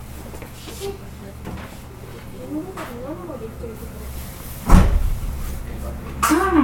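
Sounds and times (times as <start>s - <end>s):
steady low rumble of the train carriage: 3.3s - 6.2s
train door opening with mechanical thump and rush: 4.6s - 5.6s.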